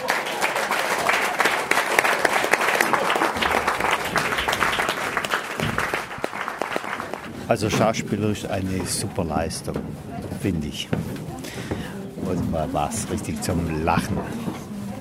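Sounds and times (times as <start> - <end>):
packed theatre audience applauding at the end of a play: 0.0 - 7.4
speech: 7.5 - 14.5.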